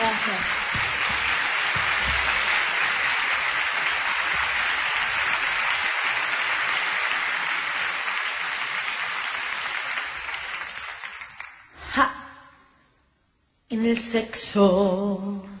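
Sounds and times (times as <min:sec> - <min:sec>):
audience applauding after a performance: 0:00.0 - 0:11.7
speech: 0:13.7 - 0:15.5.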